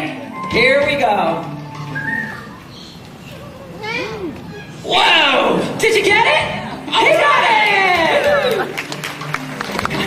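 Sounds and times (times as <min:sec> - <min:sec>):
faint noise: 0:00.0 - 0:10.0
speech: 0:00.5 - 0:01.6, 0:04.9 - 0:07.9
person whistling to call a bird: 0:01.9 - 0:02.6.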